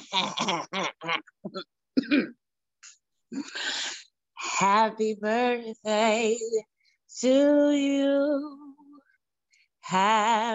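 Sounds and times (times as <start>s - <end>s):
speech: 0.1s - 1.3s, 4.8s - 8.5s, 9.9s - 10.5s
person clearing throat with a raspy hack: 1.5s - 2.4s.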